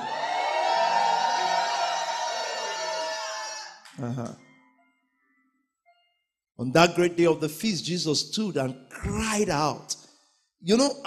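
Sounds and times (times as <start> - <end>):
crowd shouting and cheering in victory: 0.0 - 3.9
speech: 4.0 - 4.5, 6.6 - 10.0, 10.6 - 11.0.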